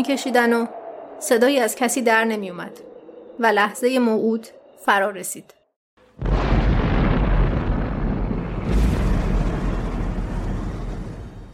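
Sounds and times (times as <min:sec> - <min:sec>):
speech: 0:00.0 - 0:05.6
massive explosion from an atomic bomb test: 0:06.2 - 0:11.5.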